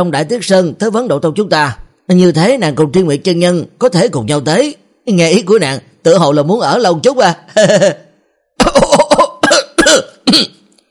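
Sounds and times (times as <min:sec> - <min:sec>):
speech: 0:00.0 - 0:08.0, 0:10.3 - 0:10.6
man coughing violently after choking on mooncake: 0:07.6 - 0:10.7.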